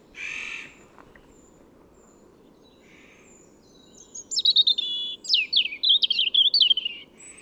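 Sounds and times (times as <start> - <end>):
European robin Erithacus rubecula singing: 3.6 - 7.4.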